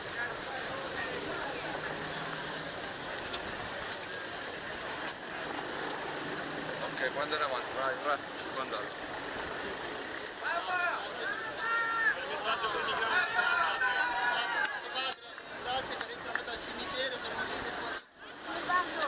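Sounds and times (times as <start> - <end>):
crowd calling out and chattering with thanks: 0.0 - 19.0
crowd shouting gratitude: 10.4 - 17.8.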